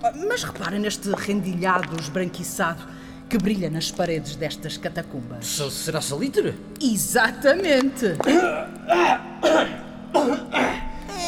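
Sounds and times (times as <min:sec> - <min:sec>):
speech: 0:00.0 - 0:10.4
person coughing roughly in damp underground catacombs: 0:08.3 - 0:11.2.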